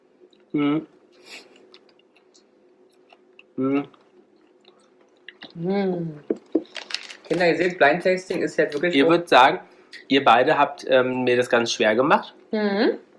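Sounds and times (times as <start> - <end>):
speech: 0.5 - 1.5, 7.4 - 13.1
person humming appreciatively: 0.6 - 1.4, 3.6 - 4.0, 5.5 - 6.3
person biting and chewing chocolate during a blind tasting: 1.2 - 5.6, 6.2 - 7.8.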